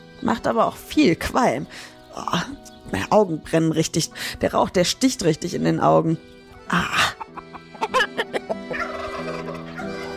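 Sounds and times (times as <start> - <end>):
speech: 0.2 - 7.2
chickens clucking inside a medieval peasant farmhouse: 6.4 - 10.1.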